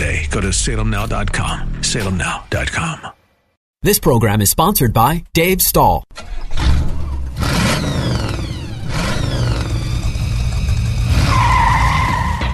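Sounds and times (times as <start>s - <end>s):
speech: 0.4s - 3.2s, 3.8s - 6.6s
tires screeching and skidding: 6.2s - 12.5s
loud car engine revving hard: 6.4s - 12.5s.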